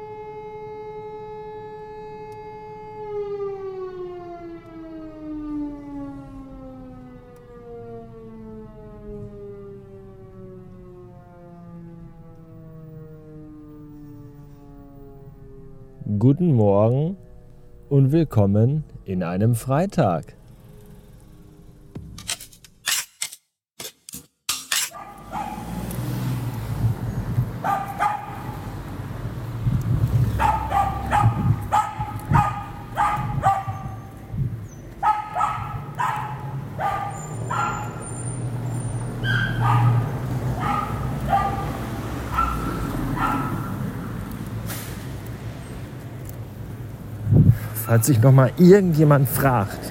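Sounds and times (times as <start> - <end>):
steady outdoor hum: 0.0 - 47.8
speech: 16.2 - 17.2, 17.9 - 20.4, 48.0 - 49.8
dogs barking: 24.8 - 25.8, 27.6 - 28.7, 30.2 - 34.2, 34.9 - 44.2.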